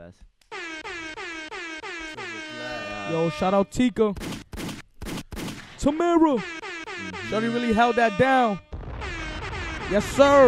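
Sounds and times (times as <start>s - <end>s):
speech: 0.1s - 0.4s, 3.1s - 4.4s, 5.8s - 8.7s, 9.9s - 10.4s
loud blaring air horn blasts: 0.5s - 3.8s, 6.4s - 10.4s.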